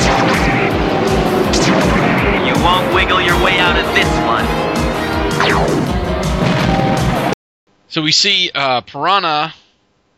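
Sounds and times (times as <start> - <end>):
booming blasts of submarines firing torpedoes at each other: 0.0 - 7.3
speech: 7.9 - 9.6.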